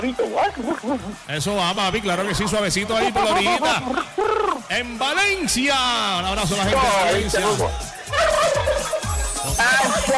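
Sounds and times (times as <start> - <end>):
speech: 0.0 - 8.4
laughter: 2.2 - 4.7, 6.9 - 10.1
turkey gobbling played as a sound effect: 8.1 - 9.1.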